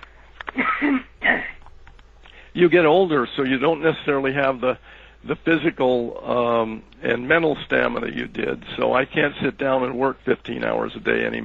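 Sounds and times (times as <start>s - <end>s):
person clearing throat: 0.5s - 1.6s
speech: 2.6s - 11.4s.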